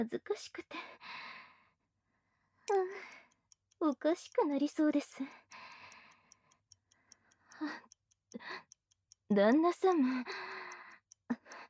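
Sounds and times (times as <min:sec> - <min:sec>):
speech: 0:00.0 - 0:01.2, 0:02.7 - 0:03.2, 0:03.8 - 0:05.7, 0:07.6 - 0:08.7, 0:09.3 - 0:10.6
pocket watch ticking: 0:02.6 - 0:11.6.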